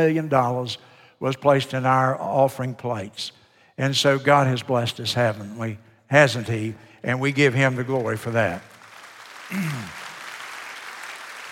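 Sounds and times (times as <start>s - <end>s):
speech: 0.0s - 8.7s, 9.5s - 10.0s
congregation applause: 8.0s - 11.5s.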